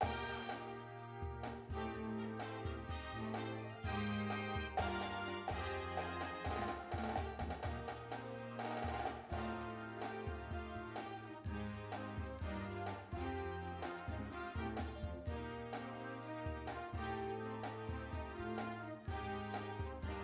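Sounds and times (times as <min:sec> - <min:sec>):
music: 0:00.0 - 0:20.2
snare drum: 0:00.0 - 0:20.2.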